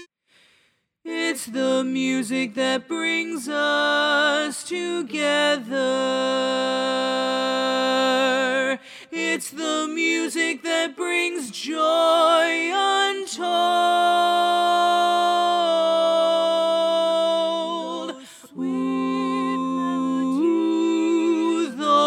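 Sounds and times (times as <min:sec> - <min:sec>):
baritone learning track vocal part: 0:01.1 - 0:22.0.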